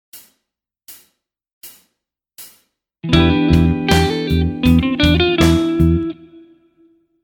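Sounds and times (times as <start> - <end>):
phrygian mode lick: 3.0 - 6.3.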